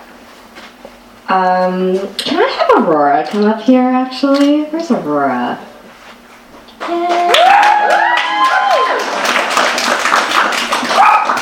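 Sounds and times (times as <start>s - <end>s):
speech: 1.3s - 5.7s
audience cheers and whoops: 6.9s - 9.3s
small audience applauding: 6.9s - 11.4s.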